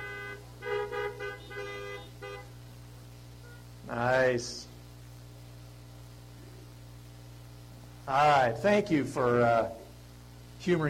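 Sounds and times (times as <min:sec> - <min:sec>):
car horns honking in greeting at a worship gathering: 0:00.0 - 0:02.6
speech: 0:03.9 - 0:04.7, 0:08.1 - 0:09.8, 0:10.6 - 0:10.8.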